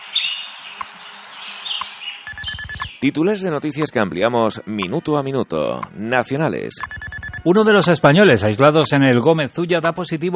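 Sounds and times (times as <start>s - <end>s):
birds chirping at dawn in Madrid: 1.1s - 3.0s
speech: 3.0s - 10.3s.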